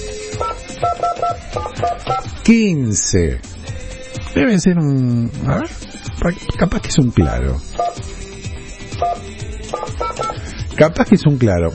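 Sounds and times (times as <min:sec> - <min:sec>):
telephone keypad DTMF tones as a number is dialed by hand: 0:00.4 - 0:02.3, 0:09.0 - 0:10.4
speech: 0:01.8 - 0:03.6, 0:04.4 - 0:08.1, 0:10.8 - 0:11.7.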